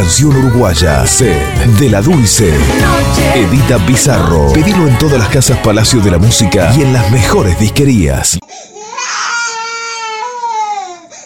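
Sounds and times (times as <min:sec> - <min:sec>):
speech: 0:00.1 - 0:08.7
young boy crying: 0:08.6 - 0:11.2.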